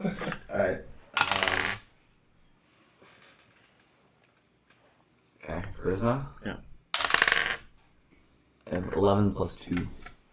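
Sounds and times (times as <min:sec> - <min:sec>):
dice rolled during a tabletop role-playing game: 0:01.2 - 0:01.9, 0:06.9 - 0:07.7
speech: 0:05.8 - 0:06.7, 0:08.7 - 0:10.1.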